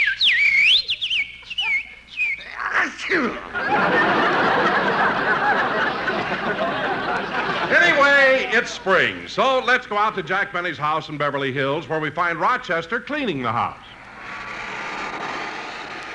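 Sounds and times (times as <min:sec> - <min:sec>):
person whistling to imitate a little bird singing: 0:00.0 - 0:02.5
laughter: 0:02.8 - 0:09.3
speech: 0:03.1 - 0:03.6, 0:08.5 - 0:13.9.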